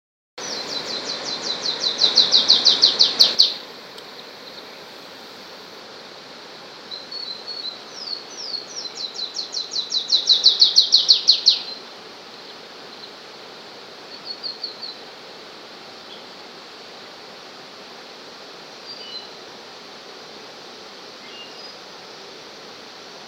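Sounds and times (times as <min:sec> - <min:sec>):
Myiothlypis fulvicauda semicervina warbler singing: 0:00.4 - 0:04.7, 0:06.9 - 0:13.2, 0:14.0 - 0:15.0, 0:18.8 - 0:19.4, 0:21.2 - 0:21.8.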